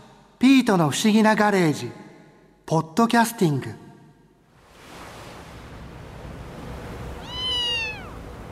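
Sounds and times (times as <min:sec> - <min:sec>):
speech: 0:00.7 - 0:02.0, 0:02.7 - 0:03.8
ocean waves: 0:04.4 - 0:08.5
high descending cry: 0:07.2 - 0:08.2.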